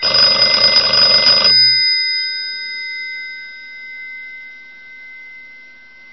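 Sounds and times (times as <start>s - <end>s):
old home rotary telephone ringing: 0.0s - 3.8s.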